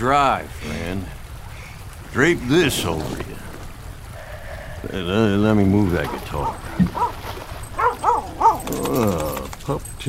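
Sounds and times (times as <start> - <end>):
speech: 0.0 - 1.2, 2.1 - 3.4, 4.8 - 7.2, 8.7 - 10.0
wet dog whimpering and yipping by a campfire: 7.8 - 9.0.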